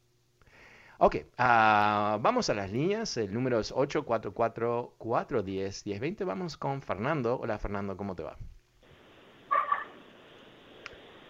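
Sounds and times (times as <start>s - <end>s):
speech: 1.0s - 8.6s
phone line hiss: 8.8s - 11.2s
dog bark: 9.5s - 10.0s
faint click: 10.8s - 11.1s.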